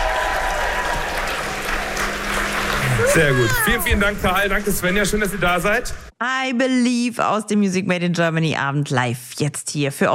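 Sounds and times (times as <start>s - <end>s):
audience applauding a performer: 0.0s - 5.9s
speech: 3.1s - 10.1s.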